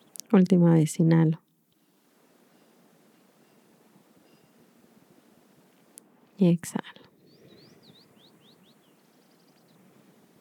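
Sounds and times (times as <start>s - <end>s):
steady outdoor hiss: 0.0s - 10.3s
speech: 0.3s - 1.4s, 6.4s - 7.0s
bird chirping and trilling outside a house in a valley: 7.2s - 9.8s.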